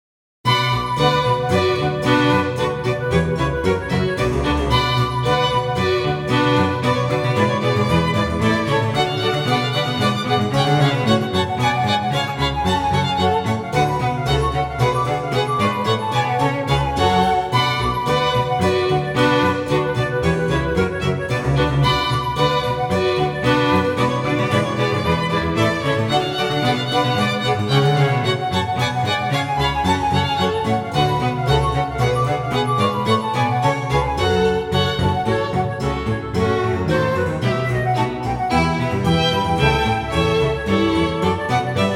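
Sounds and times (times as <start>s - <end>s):
instrumental music piece: 0.5s - 41.9s.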